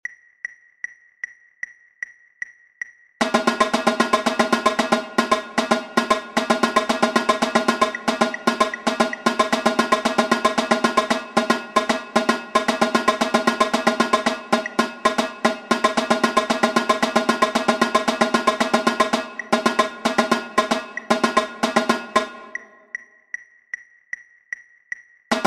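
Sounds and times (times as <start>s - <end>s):
tenor: 3.2s - 22.8s.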